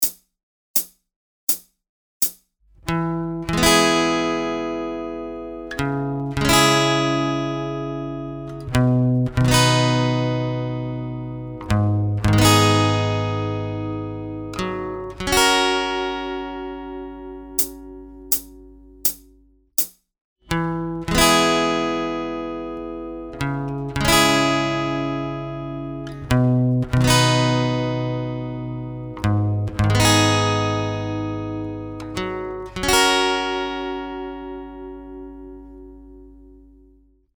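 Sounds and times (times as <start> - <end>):
slow guitar strumming with capo on fourth fret: 2.8 - 19.4, 20.5 - 36.9.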